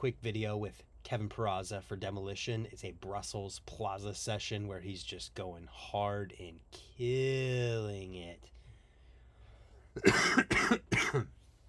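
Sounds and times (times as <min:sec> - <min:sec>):
speech: 0:00.0 - 0:08.5, 0:10.0 - 0:11.4
person coughing harshly: 0:09.9 - 0:11.4.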